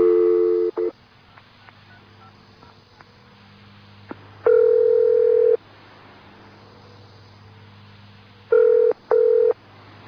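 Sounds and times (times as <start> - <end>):
long electronic telephone ringing tone of an unanswered call: 0.0 - 0.9, 4.4 - 5.6, 8.5 - 9.6
quick beeps of a phone number being dialed on a telephone: 0.0 - 0.9, 4.5 - 5.6, 8.5 - 9.6.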